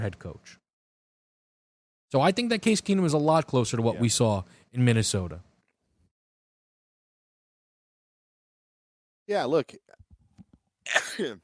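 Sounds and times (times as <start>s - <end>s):
speech: 0.0s - 0.6s, 2.1s - 5.5s, 9.3s - 10.0s, 10.9s - 11.4s
person sneezing: 10.9s - 11.4s.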